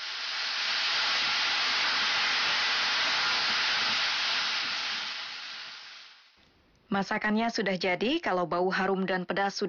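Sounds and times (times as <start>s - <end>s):
carrots stir-frying with sugar soy sauce and red chili in a hot pan: 0.0s - 6.4s
speech: 6.9s - 9.6s.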